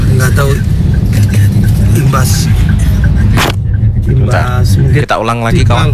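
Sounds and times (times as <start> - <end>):
idling and creeping vehicles in a heavy traffic jam: 0.0 - 5.9
indistinct voices: 0.0 - 5.9
speech: 4.3 - 5.9.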